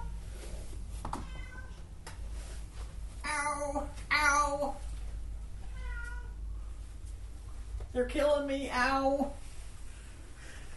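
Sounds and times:
steady low rumble: 0.0s - 10.7s
cat meowing: 1.2s - 1.8s, 5.7s - 6.4s
speech: 8.0s - 9.4s.

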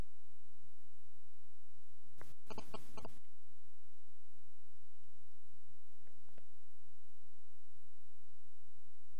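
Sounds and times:
mobile phone buzzing vibration as it powers off: 2.3s - 3.2s.

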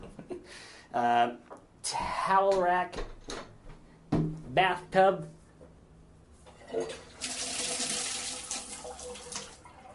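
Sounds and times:
speech: 0.5s - 3.1s, 4.6s - 5.4s, 6.7s - 7.0s
bathroom sink faucet running water: 6.7s - 9.9s.

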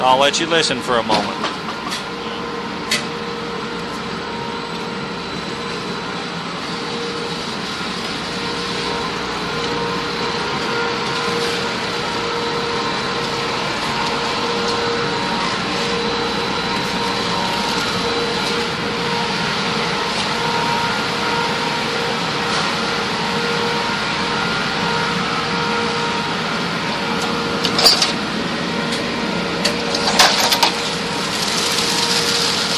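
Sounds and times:
speech: 0.0s - 1.6s
spreader machine humming as it runs down a long table: 0.0s - 32.7s.

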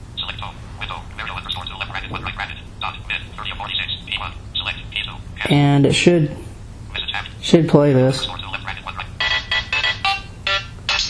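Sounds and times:
faint low hum: 0.0s - 11.0s
speech: 5.5s - 6.4s, 7.5s - 8.4s
MIDI video game theme phone ringtone: 9.2s - 11.0s.

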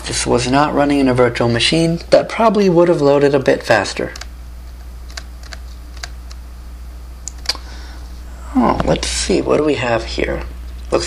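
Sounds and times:
steady low hum: 0.0s - 11.0s
speech: 0.1s - 4.2s, 8.6s - 11.0s
computer keyboard arrow key presses: 5.1s - 6.4s.

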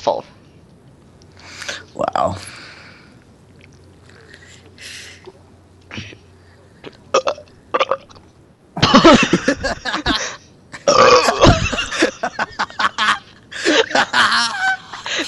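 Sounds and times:
speech: 0.0s - 0.3s, 2.0s - 2.6s
breathing: 1.3s - 3.2s, 4.0s - 5.3s
loud burping: 7.1s - 8.2s, 10.8s - 11.6s
laughter: 8.8s - 10.4s, 11.2s - 15.2s.

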